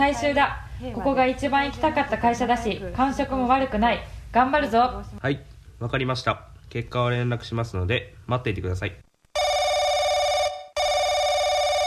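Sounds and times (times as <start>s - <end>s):
speech: 0.0s - 9.1s
telephone ringing with bright electronic trill: 9.4s - 11.8s.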